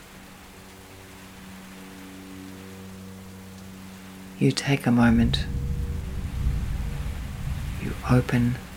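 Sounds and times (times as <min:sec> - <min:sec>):
faint low hum: 0:00.0 - 0:08.7
steady rain falling: 0:00.0 - 0:08.7
speech: 0:04.4 - 0:05.6, 0:08.0 - 0:08.6.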